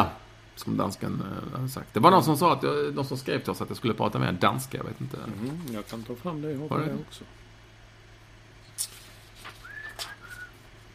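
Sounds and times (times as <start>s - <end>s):
low hum: 0.0s - 10.9s
speech: 0.6s - 7.4s
paper rustling: 5.2s - 6.2s, 8.8s - 10.7s
person whistling short wavering tones: 9.6s - 10.6s.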